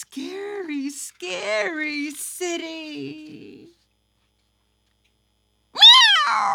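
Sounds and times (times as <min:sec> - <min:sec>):
speech: 0:00.0 - 0:03.8, 0:06.3 - 0:06.5
single loud drawn-out cat meow: 0:05.8 - 0:06.5.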